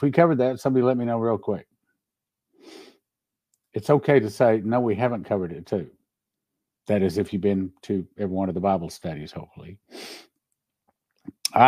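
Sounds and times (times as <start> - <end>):
speech: 0.0 - 1.7, 3.7 - 6.0, 6.9 - 10.3
faint sniff: 2.6 - 3.0, 9.9 - 10.4
person sneezing: 10.0 - 10.3.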